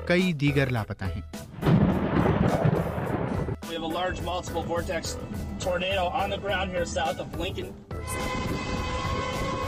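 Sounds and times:
speech: 0.1 - 1.8, 3.8 - 8.7
rumbling thunder during severe weather with tornadoes: 1.5 - 3.6
blustery wind during severe weather with tornadoes: 1.5 - 9.6.

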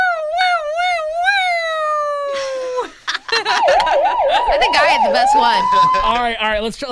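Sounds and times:
person imitating a police siren: 0.0 - 2.9, 3.5 - 6.2
laughter or chatter: 2.3 - 5.1
speech: 4.6 - 6.8.

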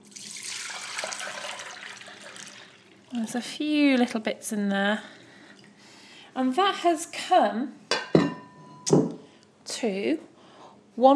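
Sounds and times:
peachy fruit juice poured out of a bowl: 0.0 - 4.1
speech: 3.1 - 5.2, 6.4 - 7.8, 9.8 - 10.3, 11.0 - 11.1.

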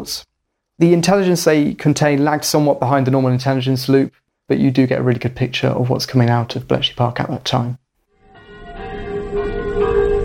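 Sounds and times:
speech: 0.0 - 7.8
church bells of a small village church in Normandy near Caen: 8.2 - 10.2.

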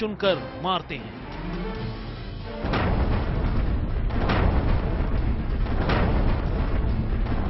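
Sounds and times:
speech: 0.0 - 1.8
gunfire: 2.6 - 7.4
mortar explosions: 2.6 - 7.4.

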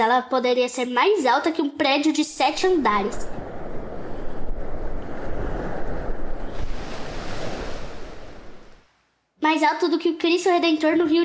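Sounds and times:
speech: 0.0 - 3.4, 9.4 - 11.2
wind buffeting: 2.3 - 8.9
large ocean waves crashing: 2.3 - 9.1.

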